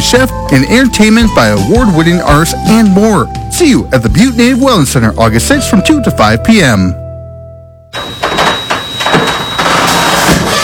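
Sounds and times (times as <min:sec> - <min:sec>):
speech: 0:00.1 - 0:07.0
noisy garage door grinding open: 0:08.0 - 0:10.6.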